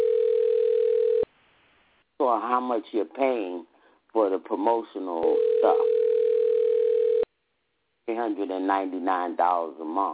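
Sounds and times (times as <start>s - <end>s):
telephone ringback tone: 0.0s - 1.3s, 5.3s - 7.3s
speech: 2.3s - 6.0s, 8.1s - 10.1s.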